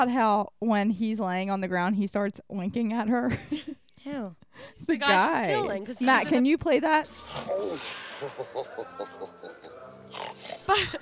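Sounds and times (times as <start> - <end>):
speech: 0.0 - 11.0
man imitating a pig with oinking grunts and snort: 7.3 - 9.4, 10.1 - 10.8
laughter: 7.6 - 11.0.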